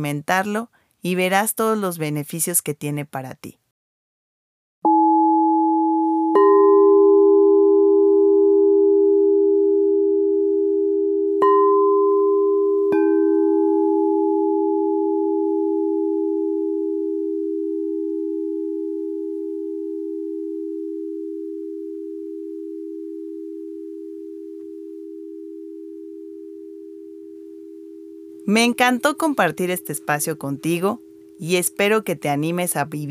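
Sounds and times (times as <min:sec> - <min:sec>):
speech: 0:00.0 - 0:03.6, 0:28.5 - 0:33.0
quartz singing bowl ringing: 0:04.9 - 0:32.2.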